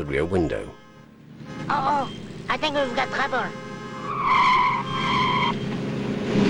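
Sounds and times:
speech: 0.0 - 0.8, 1.7 - 5.1
car engine and road rumble: 0.0 - 6.4
car tire squeal: 1.4 - 6.4.

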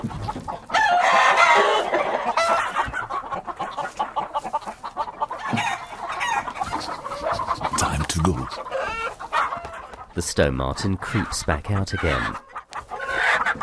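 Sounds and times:
chickens clucking and squawking in a coop disturbed by a stone marten: 0.0 - 13.6
speech: 10.2 - 12.5.

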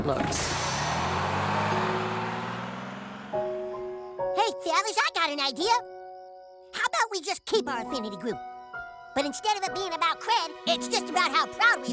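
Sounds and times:
speech: 0.0 - 0.6, 4.9 - 5.9, 7.2 - 8.5, 9.2 - 11.9
bus engine droning at night while pulling up to a bus stop: 0.0 - 4.0.

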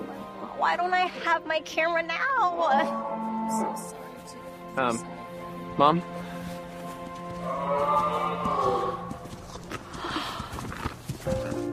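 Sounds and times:
sustained tonal background: 0.0 - 9.8
speech: 0.6 - 5.2, 5.8 - 6.2
reindeer hooves clopping on a street: 6.4 - 11.7.

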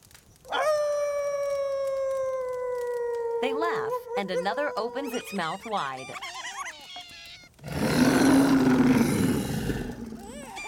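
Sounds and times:
rabbit howling: 0.5 - 6.2, 6.9 - 10.6
speech: 3.4 - 6.4.

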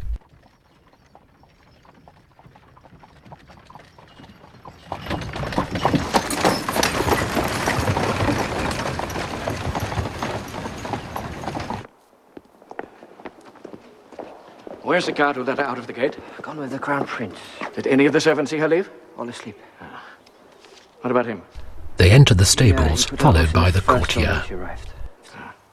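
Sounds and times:
rumble of carriage wheels: 0.0 - 11.9
horses' hooves clip-clopping pulling a carriage: 0.0 - 18.6
speech: 14.9 - 19.8, 21.0 - 25.0.

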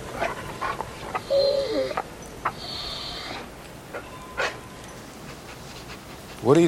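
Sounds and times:
dog breathing: 0.0 - 6.6
anxious dog whimpering while being fed from a lowered plate: 1.0 - 4.6.

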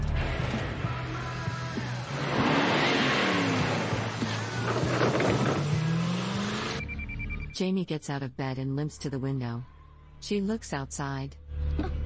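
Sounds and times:
car engine revving and pulling away: 0.2 - 6.9
speech: 7.6 - 11.9.

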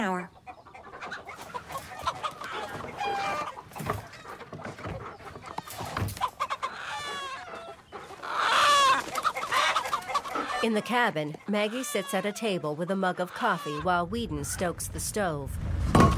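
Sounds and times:
chickens crowding together and clucking in a pen: 0.0 - 15.4
speech: 10.6 - 16.0.

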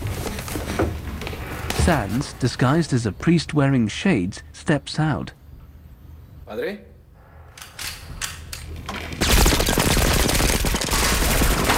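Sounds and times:
speech: 1.8 - 5.4, 6.5 - 6.9
gunfire of men shooting bullets into a confessional: 9.2 - 11.7.

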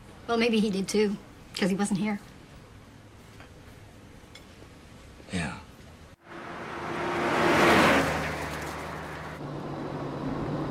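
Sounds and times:
speech: 0.3 - 2.3
car engine hum on a tree-lined road: 6.2 - 10.7
car tire noise on a tree-lined road: 6.2 - 10.7.

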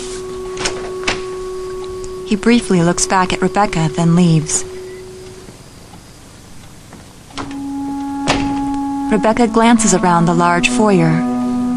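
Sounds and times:
steady low electrical hum: 0.0 - 11.7
front door being opened: 0.5 - 1.9, 7.0 - 8.8
speech: 2.3 - 4.7, 9.1 - 11.3.

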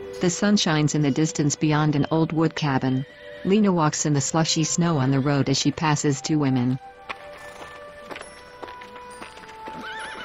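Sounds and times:
speech: 0.1 - 7.0
horse behind a fence clopping its hooves: 6.6 - 10.2
horse whinnying: 9.7 - 10.2.

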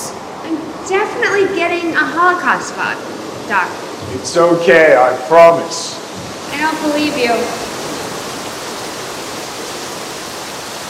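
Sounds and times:
water cascading down inside a pitch-black high-ceilinged room: 0.0 - 10.8
speech: 0.9 - 6.0, 6.6 - 7.7.

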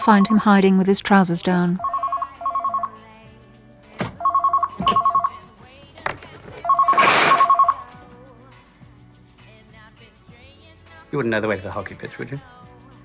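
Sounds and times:
mobile phone ringing: 0.0 - 0.7, 1.7 - 3.2, 4.0 - 5.5, 6.6 - 7.9
speech: 0.0 - 1.9, 11.2 - 12.7.

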